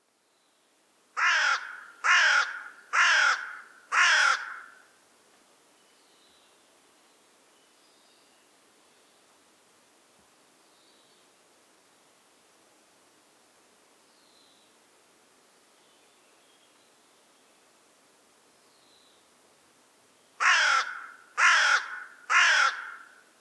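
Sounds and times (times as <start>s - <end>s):
carrion crow Corvus corone calling: 1.2s - 4.8s, 20.4s - 23.2s.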